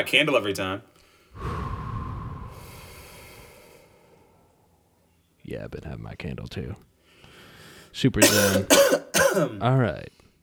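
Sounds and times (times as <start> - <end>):
speech: 0.0 - 1.5, 5.5 - 6.9, 7.9 - 10.2
deep breath inhale: 1.0 - 5.0, 7.0 - 7.9.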